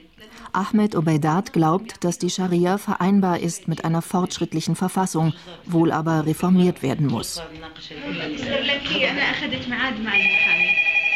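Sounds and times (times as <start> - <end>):
speech: 0.2 - 10.8
telephone ringing at a women's union emergency hotline in Jordan: 10.1 - 11.1.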